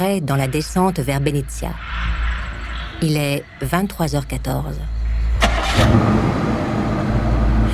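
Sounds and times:
speech: 0.0 - 2.2, 3.0 - 5.0, 5.8 - 6.4
car engine starting and idling: 4.9 - 7.7.

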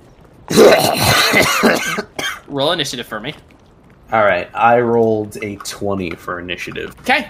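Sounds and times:
person coughing and sputtering out water: 0.5 - 2.5
speech: 0.6 - 7.2.

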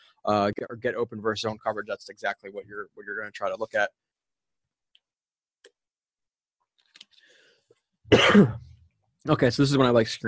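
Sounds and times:
speech: 0.2 - 4.1, 8.1 - 10.2
harsh breathy cough: 8.1 - 8.8.

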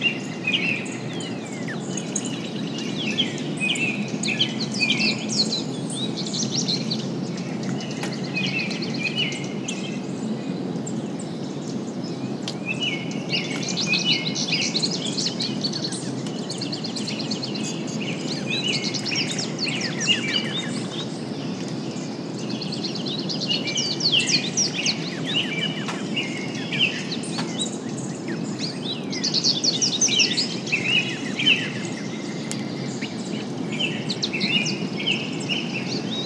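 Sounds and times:
variety of songbirds chirping and trilling: 0.0 - 36.2.

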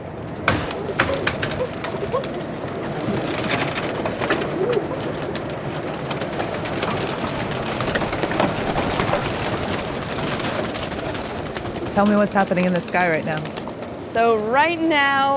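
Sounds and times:
large flock of pigeons cooing on the decks of a boat: 0.4 - 13.8
pigeon wings flapping as birds are shooed from coops: 0.4 - 14.3
speech: 12.0 - 15.3.

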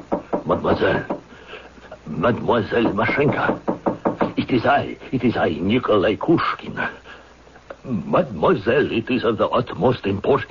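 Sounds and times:
firm knocking on a wooden door: 0.1 - 1.3, 2.8 - 4.4
speech: 0.5 - 1.2, 2.1 - 3.7, 4.4 - 7.0, 7.8 - 10.4.

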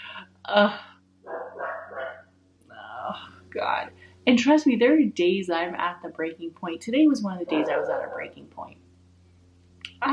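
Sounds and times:
low hum: 0.0 - 10.1
speech: 0.5 - 0.9, 3.1 - 8.8
bulldog barking: 1.3 - 2.3, 7.5 - 8.4.

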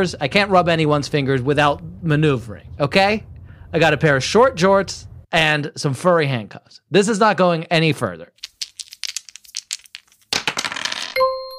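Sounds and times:
speech: 0.0 - 8.5
dice rolled across a hard surface in a game: 8.4 - 11.2
bright ringing chime: 11.2 - 11.5.

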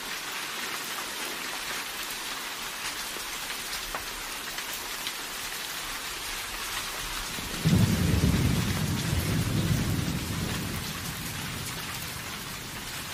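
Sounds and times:
steady dense rain with pattering drops: 0.0 - 13.1
low roll of thunder: 7.4 - 13.1.

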